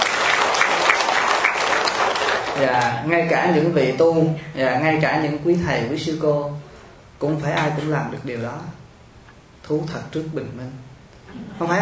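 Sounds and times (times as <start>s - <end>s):
audience applause at a Buddhist talk: 0.0s - 2.6s
speech: 2.6s - 8.8s, 9.7s - 11.8s.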